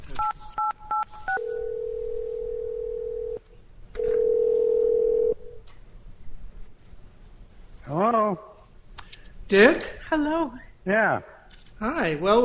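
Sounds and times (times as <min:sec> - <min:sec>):
touch-tone telephone dialing beeps: 0:00.2 - 0:02.0
steady telephone tone: 0:00.6 - 0:03.4, 0:04.0 - 0:05.4
speech: 0:09.5 - 0:12.4.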